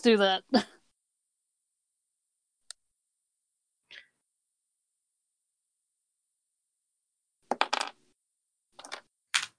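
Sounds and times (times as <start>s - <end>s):
speech: 0.0s - 0.7s
dice clattering on a hard surface: 7.5s - 8.1s, 8.8s - 9.5s.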